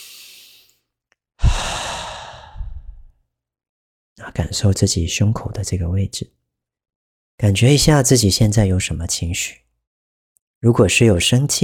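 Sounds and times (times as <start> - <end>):
deep breath during a guided calming exercise: 0.0 - 0.8, 1.4 - 3.2
speech: 4.3 - 6.4, 7.4 - 9.7, 10.6 - 11.6.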